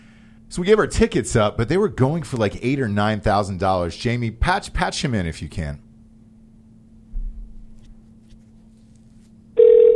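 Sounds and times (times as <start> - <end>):
low steady hum: 0.0 - 9.9
speech: 0.5 - 5.8
loud bright electronic telephone ring: 9.6 - 9.9.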